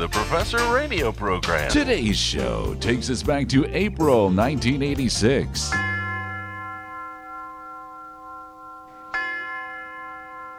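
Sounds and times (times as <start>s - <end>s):
speech: 0.0s - 5.8s
slow resonant metallic chime strikes: 5.7s - 10.5s.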